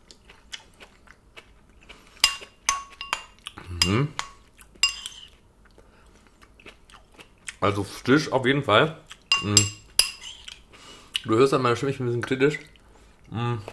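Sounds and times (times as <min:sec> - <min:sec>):
quiet chewing of tomato salad: 0:00.0 - 0:07.7, 0:09.0 - 0:11.3
cutlery clinking against a bowl of tomato salad: 0:02.2 - 0:05.3, 0:09.3 - 0:10.4
speech: 0:03.9 - 0:04.2, 0:07.6 - 0:09.8, 0:11.2 - 0:12.7, 0:13.3 - 0:13.7.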